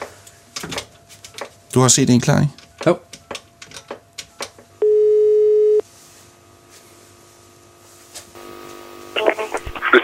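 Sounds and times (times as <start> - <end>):
speech: 1.8 - 3.1
telephone ringing tone beep: 4.8 - 5.8.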